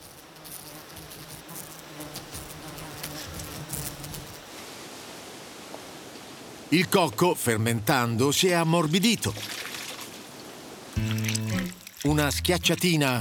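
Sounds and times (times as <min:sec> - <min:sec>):
flies buzzing with low droning hum: 0:00.0 - 0:04.5
speech: 0:06.7 - 0:09.6, 0:12.1 - 0:13.2.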